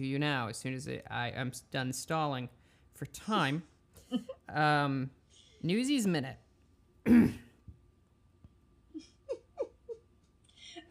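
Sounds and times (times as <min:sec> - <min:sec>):
speech: 0:00.0 - 0:06.4, 0:07.0 - 0:07.4
loud rough throat clearing: 0:07.0 - 0:07.6.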